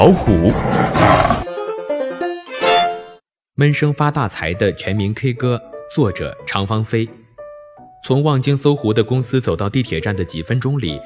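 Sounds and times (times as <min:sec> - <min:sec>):
speech: 0:00.0 - 0:01.4, 0:03.6 - 0:07.2, 0:08.0 - 0:11.0
tiger roaring and growling: 0:00.0 - 0:01.5.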